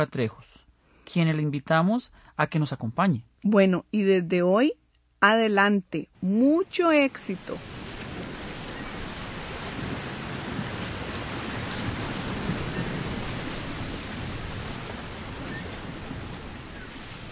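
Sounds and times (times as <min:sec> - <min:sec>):
speech: 0:00.0 - 0:07.8
ocean waves washing on a beach: 0:06.4 - 0:17.3.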